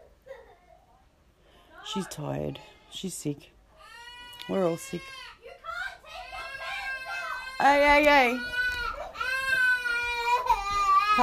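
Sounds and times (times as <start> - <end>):
speech: 1.9 - 3.5, 4.5 - 5.3, 7.6 - 8.6
toddler screaming and crying: 3.8 - 11.2.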